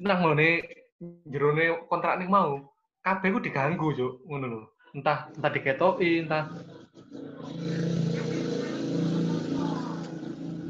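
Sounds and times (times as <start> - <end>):
speech: 0.0 - 8.0
motorbike engine droning as it rolls past: 6.0 - 10.6.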